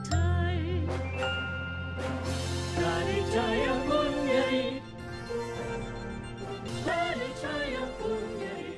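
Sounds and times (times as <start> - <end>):
theme music: 0.1 - 8.7.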